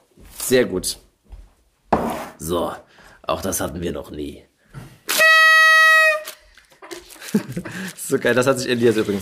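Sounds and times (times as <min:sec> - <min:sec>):
speech: 0:00.5 - 0:01.1, 0:02.4 - 0:04.5, 0:07.6 - 0:09.2
loud buzzy party horn blast: 0:05.1 - 0:06.5
laughter: 0:06.8 - 0:08.1.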